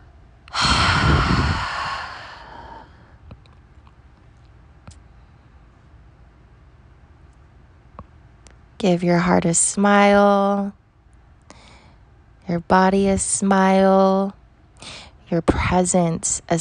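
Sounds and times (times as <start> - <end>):
long exhale through the mouth after a held breath: 0.5 - 3.1
speech: 8.8 - 10.8, 12.5 - 16.5.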